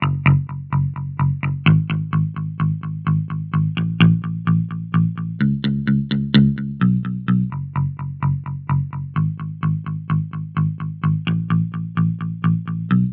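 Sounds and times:
electric guitar with chorus effect: 0.0 - 13.1.

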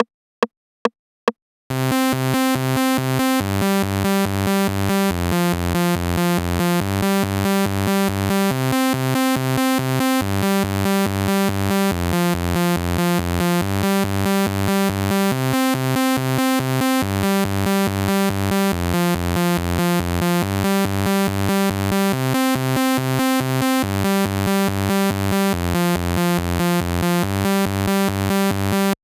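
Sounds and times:
saw synth: 1.7 - 29.0.

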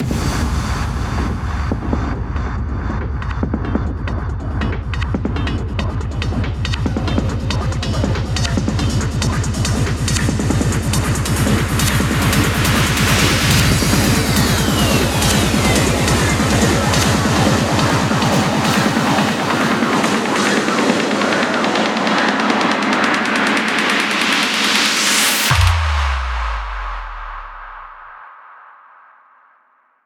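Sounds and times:
hands up and trance drum fills: 0.0 - 28.1.

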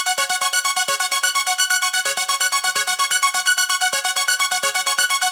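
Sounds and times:
male house music sequence: 0.2 - 5.2.

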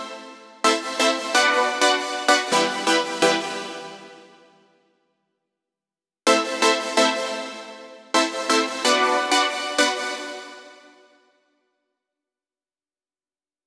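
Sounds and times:
synth chords: 0.7 - 4.1, 6.3 - 11.0.

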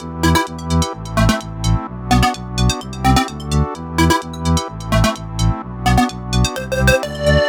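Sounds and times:
melody in E: 0.0 - 7.4.

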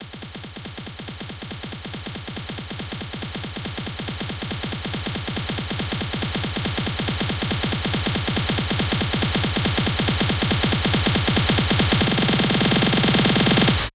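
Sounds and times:
snare drum beat at 140 BPM: 0.3 - 13.9.

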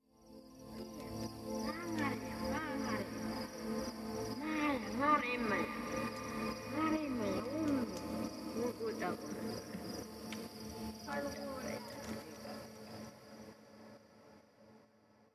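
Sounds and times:
ethnic music in D minor: 0.7 - 12.9.

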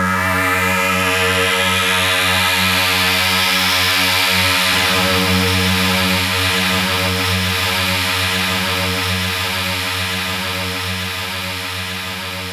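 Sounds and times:
trance sweep effects: 0.2 - 12.4.

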